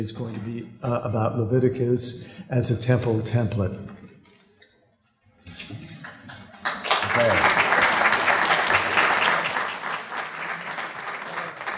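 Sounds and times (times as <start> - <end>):
speech: 0.0 - 4.0, 7.2 - 7.4
room full of people applauding: 6.0 - 11.7.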